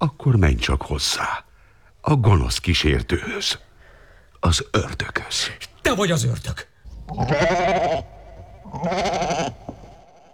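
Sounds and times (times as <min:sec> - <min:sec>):
speech: 0:00.0 - 0:03.7, 0:04.4 - 0:08.1, 0:08.7 - 0:09.6
goat bleating in a wavering nasal cry: 0:07.1 - 0:10.3.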